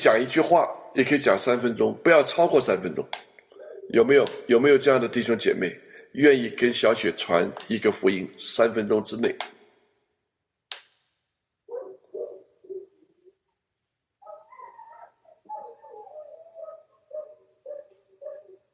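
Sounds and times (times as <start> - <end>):
speech: 0.0 - 3.3, 3.9 - 9.6
dog barking and yelping: 3.6 - 4.0, 11.7 - 13.4, 14.2 - 18.7.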